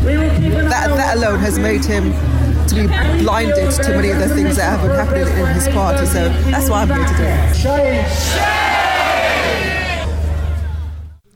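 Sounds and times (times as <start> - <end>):
speech: 0.8 - 8.7
large outdoor crowd at a rally protesting anti-Semitism chanting and cheering: 6.2 - 11.3.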